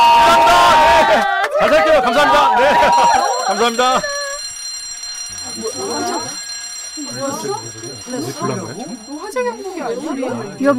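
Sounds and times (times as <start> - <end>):
several voices talking and calling out: 0.1 - 10.7
laughter: 0.9 - 4.4, 7.1 - 9.0
fire alarm ringing with a continuous high electronic tone: 2.3 - 10.7
speech: 2.9 - 4.2, 7.1 - 10.7.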